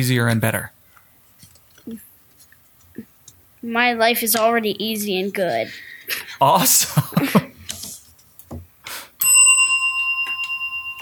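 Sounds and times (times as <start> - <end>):
speech: 0.0 - 0.8, 1.8 - 2.1, 3.0 - 7.5
laughter: 6.1 - 7.7
bell ringing: 9.2 - 10.9.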